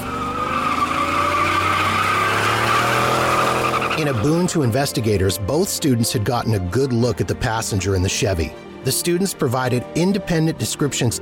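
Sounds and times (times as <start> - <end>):
car tires squealing: 0.0 - 4.8
car engine roaring while speeding off: 0.0 - 4.9
speech: 4.0 - 11.2.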